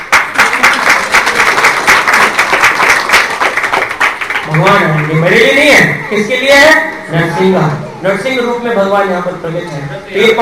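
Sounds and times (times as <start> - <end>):
audience applause at a devotional gathering: 0.0 - 5.6
speech: 4.6 - 10.4.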